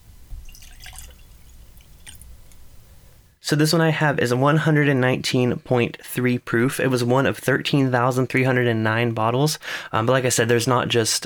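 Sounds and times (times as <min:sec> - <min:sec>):
whiskey poured from a bottle into a glass: 0:00.5 - 0:02.4
speech: 0:03.5 - 0:11.2.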